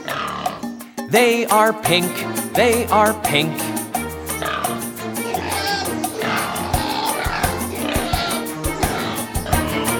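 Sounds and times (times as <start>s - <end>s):
pig oinking and grunting: 0.0s - 0.8s, 5.3s - 9.8s
pig squealing and snorting: 0.0s - 0.8s, 4.4s - 9.9s
speech: 1.1s - 3.8s.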